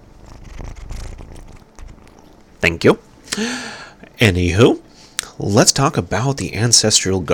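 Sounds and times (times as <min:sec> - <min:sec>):
foster kitten purring on a person's shoulder: 0:00.0 - 0:02.4
speech: 0:02.6 - 0:04.8, 0:05.4 - 0:07.3.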